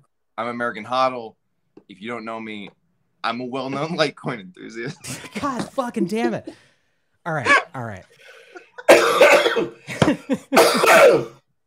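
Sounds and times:
speech: 0.4s - 8.4s, 9.5s - 11.4s
person coughing: 5.1s - 6.7s, 8.8s - 11.4s.

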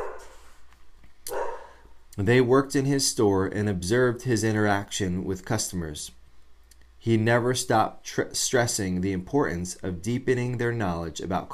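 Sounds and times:
dog yipping: 0.0s - 0.3s, 1.3s - 1.7s
dogs barking: 0.0s - 0.4s, 1.3s - 1.9s
speech: 2.2s - 6.2s, 7.0s - 11.5s.

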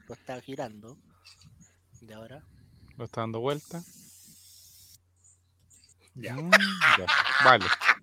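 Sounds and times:
speech: 0.1s - 4.0s, 6.2s - 8.0s
spray paint can spraying on a wall: 3.5s - 5.0s
laughter: 6.4s - 8.0s.

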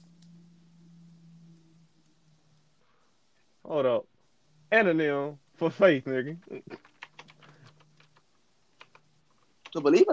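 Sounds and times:
speech: 3.7s - 4.1s, 4.7s - 6.9s, 9.8s - 10.1s
computer keyboard typing: 6.5s - 10.1s.

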